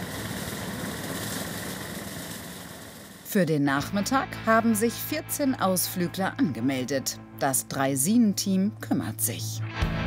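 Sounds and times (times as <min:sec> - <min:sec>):
homemade lawnmower engine running: 0:00.0 - 0:03.3
speech: 0:03.3 - 0:09.9.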